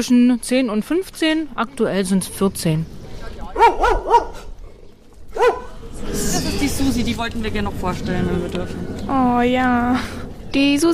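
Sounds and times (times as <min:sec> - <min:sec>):
speech: 0:00.0 - 0:04.5, 0:05.4 - 0:10.9
dog barking: 0:03.6 - 0:04.5, 0:05.3 - 0:05.8.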